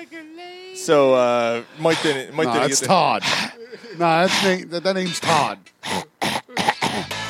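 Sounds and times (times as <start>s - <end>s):
speech: 0.8s - 6.0s
person coughing: 5.3s - 7.1s
throat clearing: 5.3s - 7.1s.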